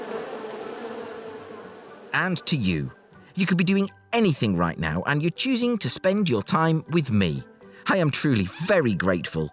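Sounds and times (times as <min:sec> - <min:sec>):
swarm of bees buzzing: 0:00.0 - 0:03.7
speech: 0:02.2 - 0:09.5.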